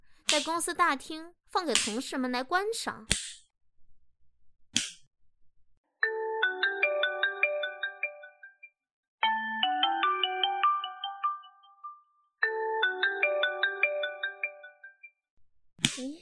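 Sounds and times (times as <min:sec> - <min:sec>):
speech: 0:00.4 - 0:03.4
sharp click: 0:03.1 - 0:03.5, 0:04.8 - 0:05.1
phone ringtone for an incoming call with bright electronic melody: 0:06.0 - 0:08.6, 0:09.2 - 0:15.0.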